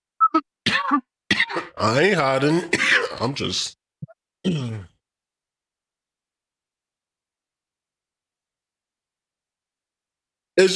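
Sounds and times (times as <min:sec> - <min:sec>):
man coughing after smoking a joint: 0:00.7 - 0:01.8, 0:02.6 - 0:03.4, 0:04.4 - 0:05.0
speech: 0:01.8 - 0:03.8, 0:04.4 - 0:04.9, 0:10.6 - 0:10.7.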